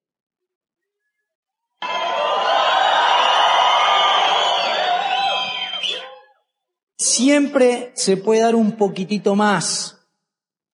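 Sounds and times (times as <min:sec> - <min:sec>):
large audience at a talk shouting and cheering: 0:01.8 - 0:06.4
speech: 0:07.2 - 0:10.0.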